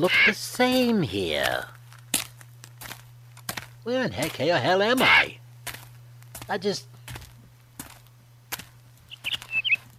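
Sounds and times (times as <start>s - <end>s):
speech: 0.0s - 1.8s, 3.8s - 5.4s, 6.5s - 6.9s
short high-pitched bird chirps: 9.1s - 9.9s.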